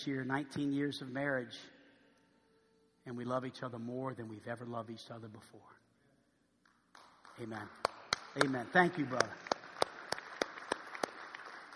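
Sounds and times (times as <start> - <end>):
speech: 0.0 - 1.8, 3.1 - 5.8, 7.4 - 9.5
audience clapping in a steady rhythm: 6.6 - 11.7.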